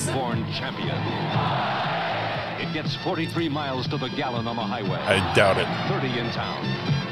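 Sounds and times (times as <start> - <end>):
speech: 0.2 - 1.7, 2.6 - 7.0
large crowd roaring and cheering in a car commercial: 5.1 - 5.8.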